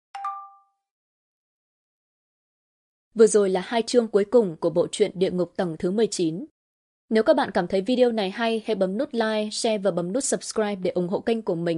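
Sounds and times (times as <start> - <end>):
mobile phone text message alert two-note electronic chime: 0.2 - 0.8
speech: 3.2 - 6.5, 7.1 - 11.7.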